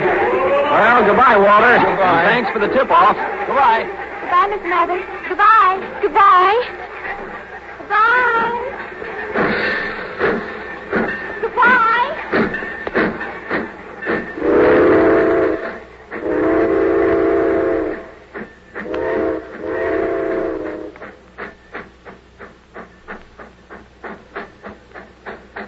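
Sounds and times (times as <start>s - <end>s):
laughter: 0.0s - 7.9s
steam train chuffing as it pulls away: 0.0s - 25.6s
speech: 0.8s - 6.8s
steam train whistle blasts: 14.4s - 18.2s, 18.8s - 21.1s.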